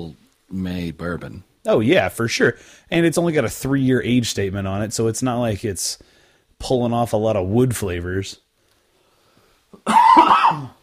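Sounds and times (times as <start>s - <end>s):
speech: 0.0s - 8.4s, 9.8s - 10.8s
harsh raspy throaty cough: 9.8s - 10.8s.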